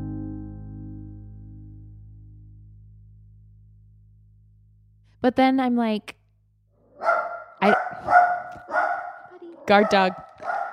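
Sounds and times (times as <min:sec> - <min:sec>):
speech: 0:05.2 - 0:06.2, 0:07.6 - 0:08.8, 0:09.7 - 0:10.6
dog barking: 0:06.9 - 0:10.7.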